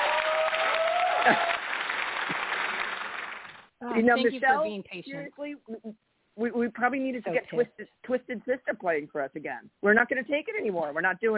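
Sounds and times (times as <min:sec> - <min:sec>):
person whooping: 0:00.0 - 0:01.6
crowd applauding: 0:00.0 - 0:03.7
speech: 0:01.2 - 0:01.6, 0:03.9 - 0:11.3.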